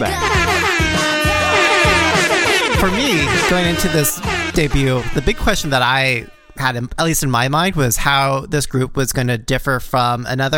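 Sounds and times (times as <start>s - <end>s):
speech: 0.0s - 0.3s, 2.8s - 10.5s
pounding electronic beat: 0.0s - 6.7s
air horn blasts: 0.0s - 6.8s.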